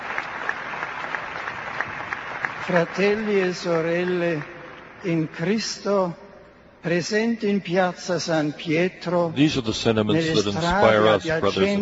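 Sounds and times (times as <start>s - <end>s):
large crowd applauding in a square: 0.0s - 5.0s
speech: 2.6s - 6.2s, 6.8s - 11.8s.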